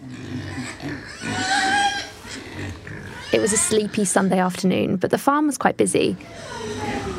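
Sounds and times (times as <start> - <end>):
pigs grunting in a farmyard pen: 0.0 - 4.3, 6.2 - 7.1
speech: 3.3 - 6.8.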